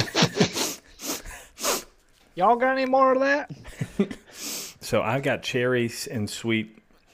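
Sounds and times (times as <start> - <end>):
laughter: 0.0 - 0.9, 3.5 - 4.3
person sniffing whiskey aroma: 0.3 - 2.0, 4.3 - 4.8
speech: 2.4 - 4.2, 4.9 - 6.8.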